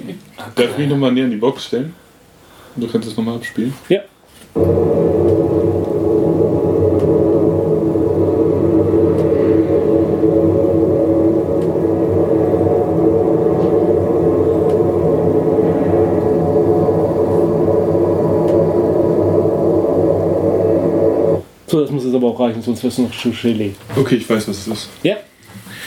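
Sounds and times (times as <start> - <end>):
speech: 0.4 - 2.0, 2.8 - 4.8, 22.1 - 25.3
airplane cabin noise heard from inside the toilet: 4.6 - 21.4
deep airplane engine hum: 4.6 - 21.4
constant whirring: 4.6 - 21.5.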